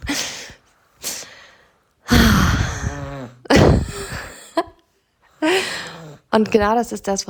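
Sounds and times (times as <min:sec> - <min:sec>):
baby snoring: 0:02.1 - 0:03.7
speech: 0:06.4 - 0:07.2.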